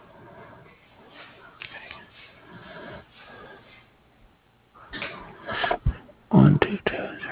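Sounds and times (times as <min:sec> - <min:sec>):
person clearing throat: 0:04.9 - 0:07.1
person coughing: 0:05.0 - 0:07.1.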